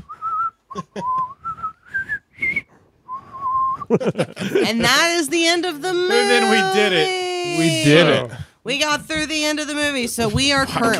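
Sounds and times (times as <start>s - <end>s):
man whistling a melody while walking: 0.0s - 3.9s
laughter: 0.7s - 1.2s, 3.8s - 5.2s, 5.9s - 8.3s, 10.4s - 10.9s
speech: 0.7s - 1.3s, 3.9s - 10.9s.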